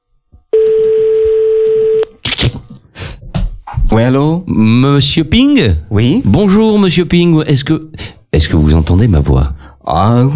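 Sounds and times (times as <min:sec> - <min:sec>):
telephone ringing tone on an outgoing call: 0:00.6 - 0:02.1
speech: 0:03.9 - 0:10.3.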